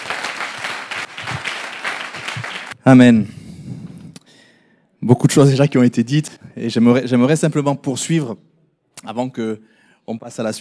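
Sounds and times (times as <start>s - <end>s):
church congregation applauding during a worship service: 0.0s - 2.8s
speech: 2.9s - 3.4s, 5.3s - 10.5s.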